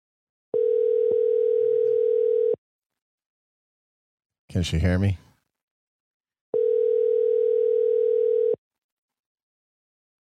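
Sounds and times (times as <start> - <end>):
phone calling tone after the call button is pressed: 0.5 - 2.6, 6.5 - 8.6
speech: 4.6 - 5.3.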